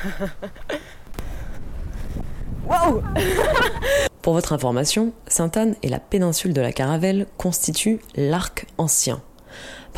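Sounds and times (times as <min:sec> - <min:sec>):
speech: 0:00.0 - 0:00.7, 0:02.2 - 0:09.9
laughter: 0:00.0 - 0:00.8, 0:03.0 - 0:04.0
strong wind buffeting microphone on an open plain in Martinique: 0:00.6 - 0:04.2.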